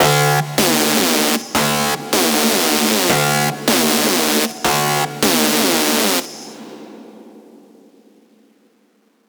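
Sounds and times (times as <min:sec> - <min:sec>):
screeching music loop in D minor: 0:00.0 - 0:06.7.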